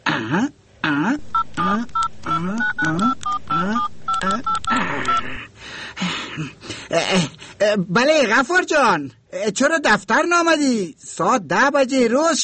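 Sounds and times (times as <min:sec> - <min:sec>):
speech: 0:00.3 - 0:03.7, 0:07.8 - 0:12.4
touch-tone telephone keypad beeps as a number is dialed: 0:01.3 - 0:05.4.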